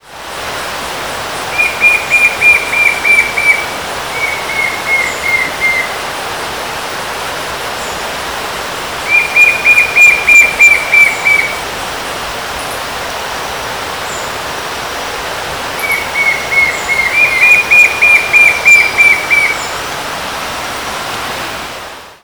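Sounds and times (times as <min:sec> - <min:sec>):
Pyriglena leucoptera singing: 0:01.5 - 0:06.0, 0:09.0 - 0:11.6, 0:15.8 - 0:19.8.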